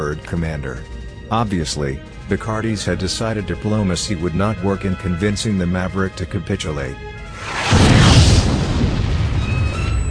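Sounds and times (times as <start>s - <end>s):
speech: 0.1s - 7.8s
explosion of weapons fire hitting a starship: 7.4s - 10.0s.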